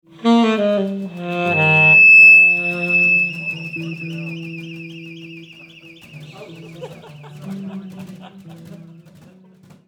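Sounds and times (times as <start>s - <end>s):
audio feedback: 0.0s - 7.6s
orchestra playing: 0.1s - 8.7s
laughter: 1.2s - 9.8s.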